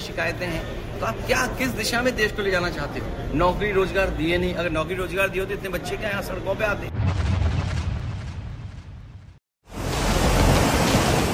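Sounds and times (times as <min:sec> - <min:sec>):
speech: 0:00.2 - 0:07.2
swollen floodwater roaring and surging: 0:09.7 - 0:11.3.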